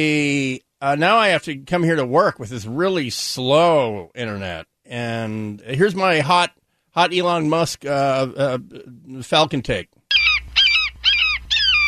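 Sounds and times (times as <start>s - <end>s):
speech: 0.0s - 10.0s
hawk or falcon screeching: 10.1s - 11.8s.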